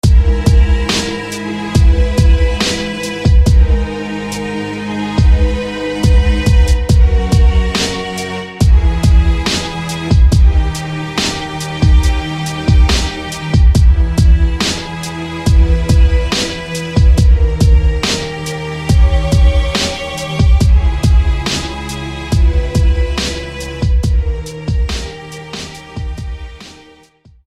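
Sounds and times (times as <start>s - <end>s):
string trio: 0.0s - 27.4s.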